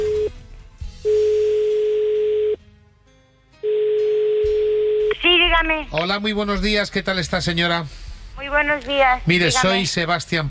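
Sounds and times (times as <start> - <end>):
outgoing telephone call ringback tones: 1.1 - 2.6, 3.6 - 5.1
speech: 5.6 - 10.4.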